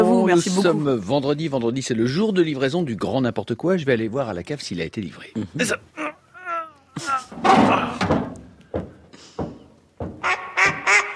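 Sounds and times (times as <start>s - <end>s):
speech: 0.3s - 6.0s, 7.0s - 8.1s
heavy thumps and clattering knocks: 7.3s - 11.0s
female duck quacking: 10.2s - 11.1s.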